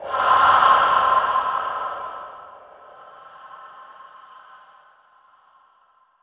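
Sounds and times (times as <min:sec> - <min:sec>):
breathing: 0:00.0 - 0:06.2.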